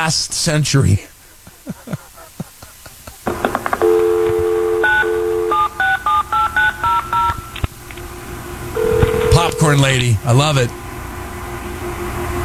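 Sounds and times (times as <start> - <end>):
speech: 0.0 - 1.1, 9.7 - 10.8
laughter: 0.6 - 7.2
telephone touch-tone beeps at varying pitches: 3.3 - 7.7, 8.8 - 10.0
old telephone being dialled with clicks: 3.3 - 8.1
old telephone steady low dial tone: 3.3 - 10.2.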